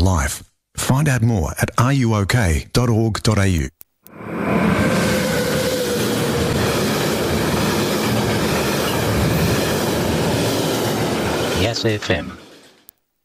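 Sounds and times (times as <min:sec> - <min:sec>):
speech: 0:00.1 - 0:04.4, 0:11.6 - 0:12.4
train rumbling on rails: 0:04.1 - 0:12.9.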